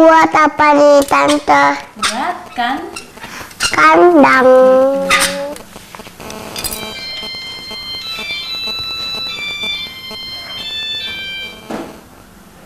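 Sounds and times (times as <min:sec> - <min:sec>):
speech: 0:00.1 - 0:03.1, 0:03.7 - 0:05.4
mobile phone bright electronic ringtone: 0:06.5 - 0:12.1.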